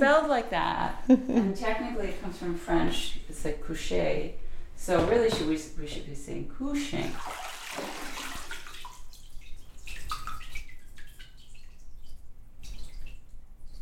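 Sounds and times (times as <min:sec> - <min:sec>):
speech: 0:00.0 - 0:07.9
water trickling and dripping as it drains from cotton and abaca paper pulp: 0:07.0 - 0:13.7.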